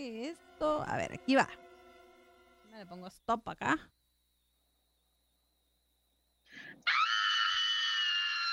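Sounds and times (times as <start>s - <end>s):
speech: 0.0s - 1.6s, 2.8s - 4.0s
woman screaming in fear: 6.8s - 8.5s.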